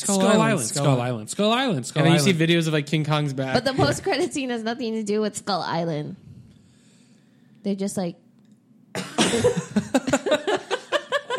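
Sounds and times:
speech: 0.0s - 6.2s, 7.6s - 8.2s, 9.0s - 10.2s
person coughing: 9.0s - 9.9s
laughter: 9.2s - 11.3s.

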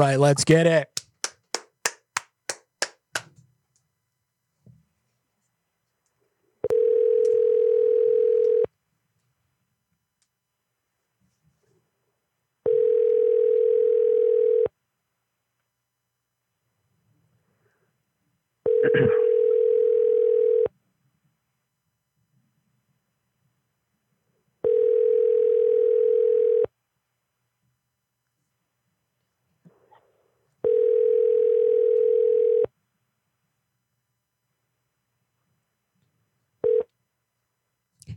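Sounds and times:
speech: 0.0s - 0.9s
telephone ringing tones during an outgoing call: 6.6s - 8.7s, 12.6s - 14.7s, 18.6s - 20.7s, 24.6s - 26.7s, 30.6s - 32.7s, 36.6s - 36.9s.

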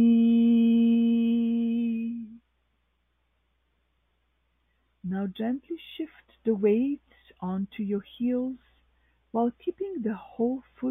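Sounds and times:
person singing sustained ee vowel: 0.0s - 2.4s
speech: 5.2s - 8.7s, 9.3s - 10.8s.

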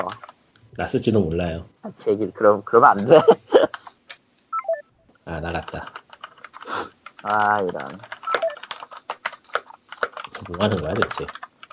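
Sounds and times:
typing on a computer keyboard: 0.0s - 0.4s, 5.6s - 11.7s
speech: 0.0s - 3.6s, 5.4s - 6.0s, 7.2s - 8.1s, 10.4s - 11.4s.

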